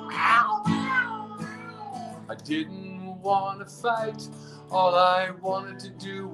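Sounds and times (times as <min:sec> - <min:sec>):
cat meowing: 0:00.0 - 0:02.2
speech: 0:02.4 - 0:06.3.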